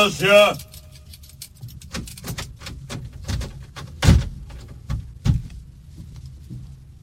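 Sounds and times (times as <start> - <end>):
speech: 0.0 - 0.7
sharp metallic clicks and rattles of a prison cell door: 0.6 - 4.8
heavy prison cell door opened by a guard: 1.9 - 4.8.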